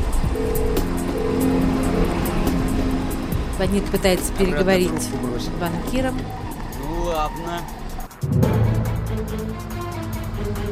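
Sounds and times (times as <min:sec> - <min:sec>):
car engine rumble while driving along in jerks: 0:00.0 - 0:10.7
speech: 0:03.6 - 0:06.4, 0:07.2 - 0:07.8.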